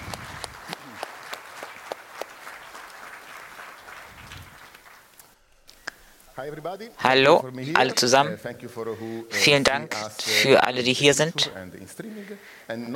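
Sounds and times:
audience applauding a speaker: 0.0 - 6.1
speech: 6.4 - 12.9.

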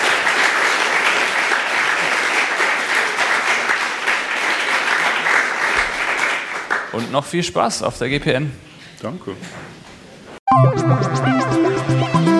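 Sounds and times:
audience applause at a conference after a talk: 0.0 - 7.3
speech: 7.0 - 9.8, 10.7 - 11.6.

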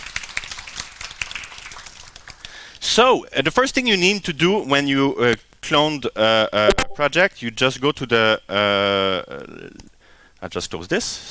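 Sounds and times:
audience applause during a technical presentation: 0.0 - 2.5
speech: 2.9 - 11.3.

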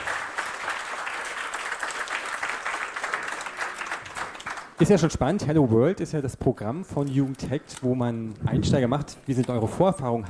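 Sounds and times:
audience applause of many hands clapping: 0.0 - 5.0
speech: 4.8 - 10.2.

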